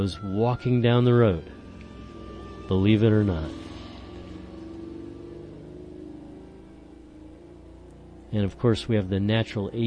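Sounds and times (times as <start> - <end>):
speech: 0.0 - 1.6, 2.7 - 3.6, 8.3 - 9.8
car engine humming outside an open window: 0.0 - 9.8.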